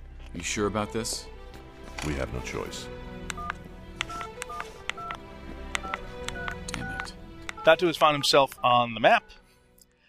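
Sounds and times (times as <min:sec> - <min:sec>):
speech: 0:00.3 - 0:01.4, 0:02.0 - 0:03.1, 0:07.6 - 0:09.4
sharp button clicks on a telephone keypad: 0:03.3 - 0:05.2, 0:05.8 - 0:08.6
telephone keypad dialing tones: 0:03.3 - 0:05.2, 0:05.8 - 0:08.8.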